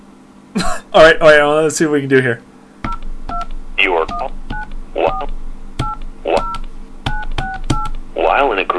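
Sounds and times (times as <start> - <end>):
speech: 0.9 - 2.5, 3.8 - 4.4
touch-tone keypad tones entering a caller code on a phone conference line: 2.9 - 8.0.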